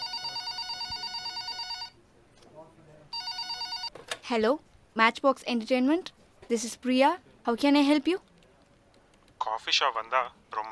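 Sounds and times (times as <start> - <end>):
landline telephone ringing: 0.0 - 2.0, 3.1 - 3.9
faint murmur: 0.0 - 10.7
speech: 4.3 - 8.3, 9.5 - 10.7.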